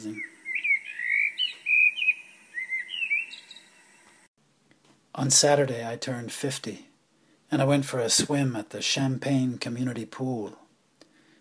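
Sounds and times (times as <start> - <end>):
speech: 0.0 - 0.3, 5.2 - 6.9, 7.5 - 10.6
birds singing outside a window in Amsterdam: 0.0 - 4.3.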